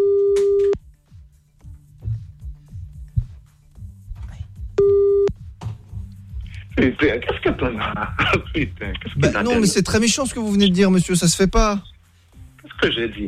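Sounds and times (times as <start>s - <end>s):
telephone busy tone while calling someone back: 0.0s - 0.8s, 4.8s - 5.3s
laughter: 6.8s - 10.1s
speech: 7.0s - 11.9s, 12.8s - 13.2s.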